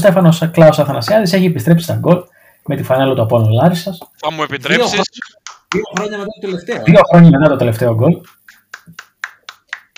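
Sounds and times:
speech: 0.0s - 9.0s
single person clapping hands: 5.2s - 6.1s, 8.0s - 9.9s.

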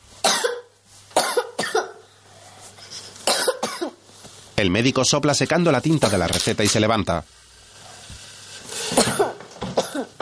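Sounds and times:
young girl coughing in a doctor's consulting room: 0.2s - 2.0s, 3.2s - 4.0s, 8.9s - 10.2s
speech: 4.6s - 7.4s.

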